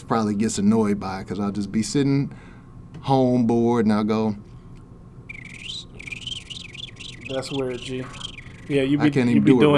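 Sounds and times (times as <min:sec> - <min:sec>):
speech: 0:00.0 - 0:04.5, 0:07.3 - 0:09.7
low hum: 0:00.0 - 0:09.7
man whistling in imitation of a small bird: 0:05.3 - 0:08.8.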